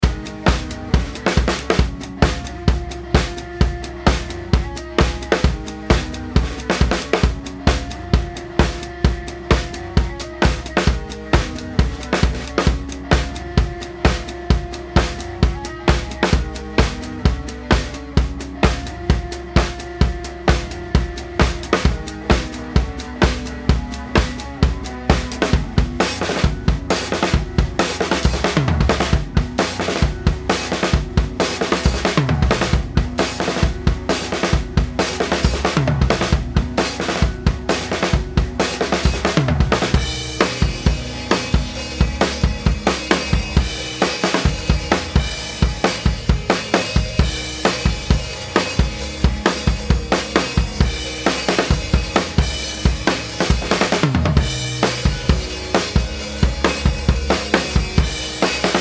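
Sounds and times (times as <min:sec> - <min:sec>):
drums: 0:00.0 - 0:58.8.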